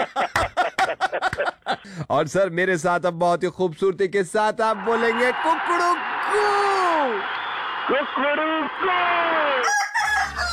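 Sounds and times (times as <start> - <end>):
laughter: 0.0 - 2.0
speech: 0.1 - 0.5, 1.1 - 10.4
rooster crowing: 9.6 - 10.5.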